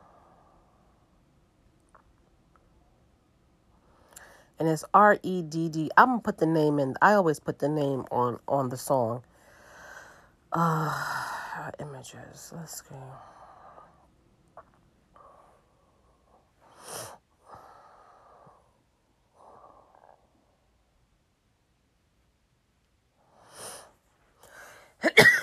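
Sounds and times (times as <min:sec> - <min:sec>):
soft breathy noises: 0:00.0 - 0:01.3, 0:03.7 - 0:04.6, 0:09.2 - 0:11.8, 0:12.8 - 0:21.0, 0:23.1 - 0:25.0
speech: 0:04.6 - 0:09.3, 0:10.5 - 0:13.4
person coughing: 0:25.0 - 0:25.4.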